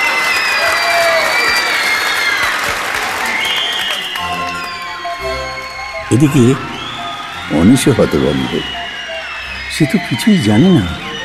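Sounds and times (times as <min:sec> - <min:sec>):
audience clapping at a hypnotism show: 0:00.0 - 0:11.2
crowd noise at a hypnotism show: 0:00.0 - 0:11.2
tonal sounds: 0:04.2 - 0:11.2
speech: 0:06.1 - 0:06.8, 0:07.5 - 0:08.8, 0:09.7 - 0:11.1.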